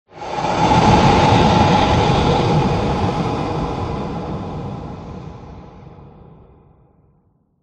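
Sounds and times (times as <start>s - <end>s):
turbulent whoosh horror and atmosphere effect: 0.1s - 6.1s.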